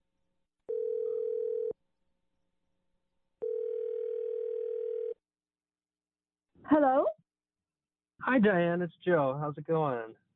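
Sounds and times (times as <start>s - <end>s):
telephone ringback tones: 0.7s - 1.7s, 3.4s - 5.2s
speech: 8.4s - 10.2s.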